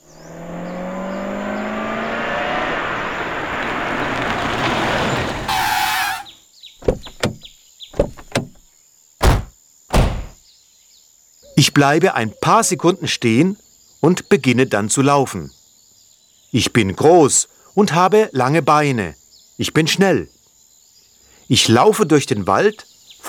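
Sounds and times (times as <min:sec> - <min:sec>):
car speeding past on a road along fields and a forest: 0:00.0 - 0:06.3
heavy car door thuds as two men get out: 0:05.2 - 0:08.6, 0:09.2 - 0:10.4
clicks and clunks: 0:06.8 - 0:08.6
speech: 0:11.7 - 0:15.6, 0:16.5 - 0:20.3, 0:21.5 - 0:23.2.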